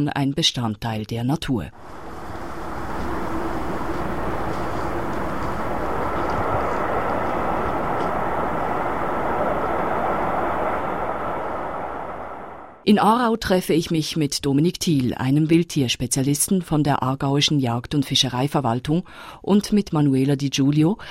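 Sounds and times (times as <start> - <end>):
speech: 0.0 - 2.0, 12.9 - 21.0
Interregio passenger train rumbling along the rails: 1.8 - 12.8.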